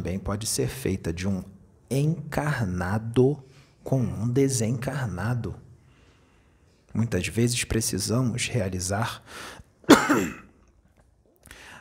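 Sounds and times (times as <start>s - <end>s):
speech: 0.0s - 5.6s, 6.9s - 10.4s
person coughing: 9.9s - 10.6s.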